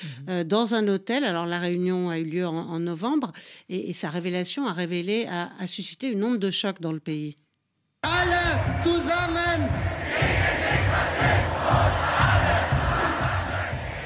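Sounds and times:
speech: 0.0s - 7.4s, 8.0s - 12.0s
protest crowd chanting an anti-fascist slogan in unison: 8.0s - 14.0s.

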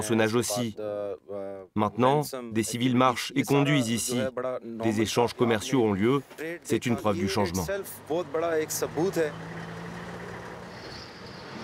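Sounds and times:
speech: 0.0s - 1.2s, 1.8s - 9.8s
trucks idling: 7.2s - 11.6s.

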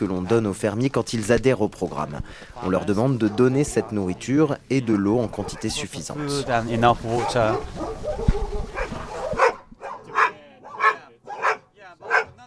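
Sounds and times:
speech: 0.0s - 8.2s
many caged dogs barking in rusty grey cages: 2.9s - 4.0s, 5.1s - 12.4s.

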